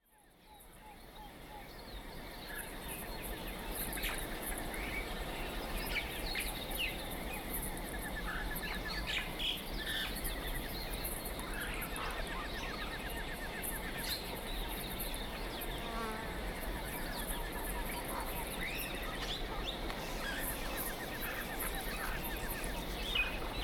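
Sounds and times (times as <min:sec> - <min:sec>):
jungle ambience: 0:00.4 - 0:23.6.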